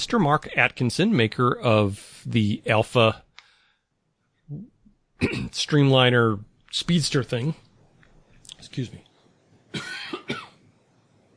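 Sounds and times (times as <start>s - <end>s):
speech: 0.0s - 3.2s, 4.5s - 7.6s, 8.6s - 9.0s, 9.7s - 10.4s
throaty coughs turned away from the microphone: 5.2s - 5.6s, 9.7s - 10.6s.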